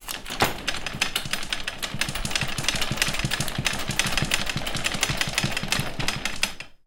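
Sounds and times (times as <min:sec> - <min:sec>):
folded-up Z-bed shaking and rattling: 0:00.0 - 0:06.7.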